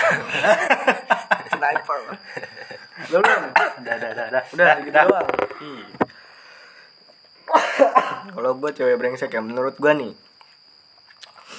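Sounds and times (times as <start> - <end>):
laughter: 0.0 - 3.1
speech: 0.1 - 1.1, 3.1 - 3.5, 4.3 - 5.9, 8.6 - 10.3
person coughing: 3.1 - 4.0, 7.5 - 8.3.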